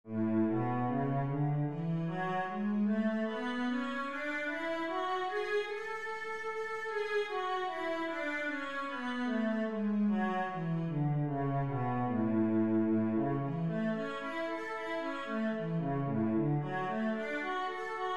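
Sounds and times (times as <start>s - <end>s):
cello in A major: 0.0s - 18.1s.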